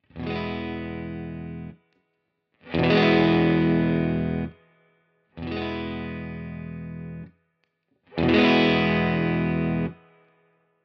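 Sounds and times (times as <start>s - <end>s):
guitar through a boost pedal: 0.1s - 1.7s, 2.7s - 4.5s, 5.4s - 7.2s, 8.2s - 10.0s.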